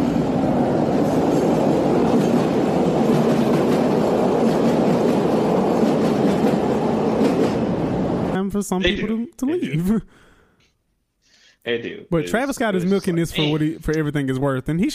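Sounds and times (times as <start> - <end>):
train passing by: 0.0 - 8.8
speech: 8.6 - 10.3, 11.6 - 14.9.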